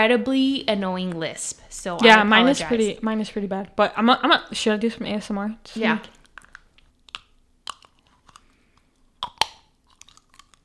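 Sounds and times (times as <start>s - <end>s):
speech: 0.0s - 6.2s
clear plastic dental aligners being pulled from the mouth: 6.0s - 10.6s.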